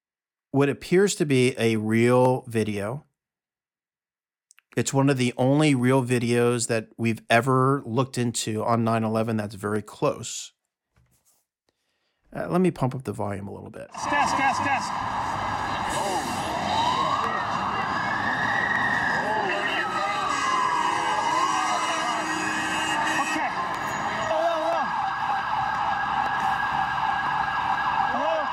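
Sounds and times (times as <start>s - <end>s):
speech: 0.5s - 3.1s, 4.8s - 10.6s, 12.3s - 15.4s
indistinct voices murmuring: 13.9s - 26.5s
emergency sirens wailing during the 9/11 attacks: 13.9s - 28.5s.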